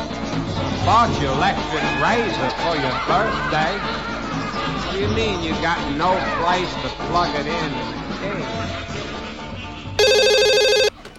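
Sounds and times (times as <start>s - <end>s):
music: 0.0s - 10.9s
speech: 0.8s - 4.1s, 4.9s - 8.9s
laughter: 2.0s - 5.2s
loud electronic telephone ring: 10.0s - 11.0s.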